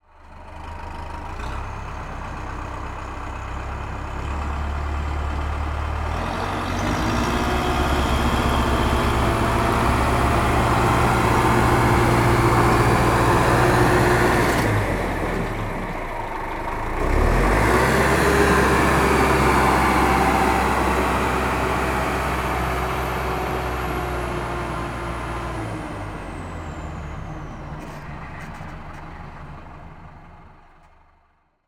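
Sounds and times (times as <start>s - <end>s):
tractor moving forward and backing up: 0.0s - 31.4s.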